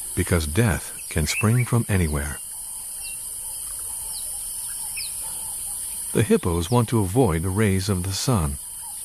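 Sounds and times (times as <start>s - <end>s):
high-pitched insect drone: 0.0s - 9.0s
soft marsh ambience: 0.0s - 9.0s
wading birds calling while feeding in a marsh: 0.0s - 9.0s
speech: 0.2s - 2.4s, 6.1s - 8.7s.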